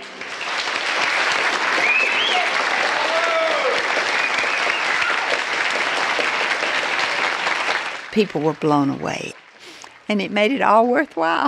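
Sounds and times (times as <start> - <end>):
large audience standing ovation applause after a stage performance: 0.0 - 10.1
faint audience whistles or cheers: 0.4 - 8.0
speech: 8.2 - 9.4, 10.1 - 11.4.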